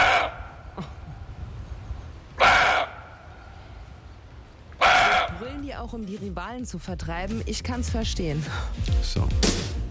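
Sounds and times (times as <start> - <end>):
roe deer buck barking: 0.0 - 0.7, 2.4 - 3.3, 4.8 - 5.6
speech: 5.8 - 9.8.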